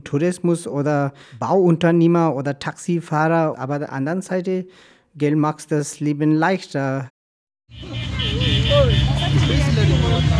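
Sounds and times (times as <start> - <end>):
speech: 0.1 - 7.1, 7.7 - 8.0
stop-and-go traffic of cars, buses and motorcycles in narrow bazaar lanes: 7.7 - 10.3.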